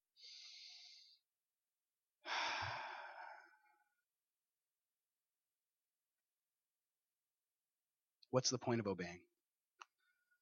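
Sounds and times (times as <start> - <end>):
group of people taking a deep breath during a sermon: 0.2 - 1.2, 2.2 - 3.8
speech: 8.3 - 9.3.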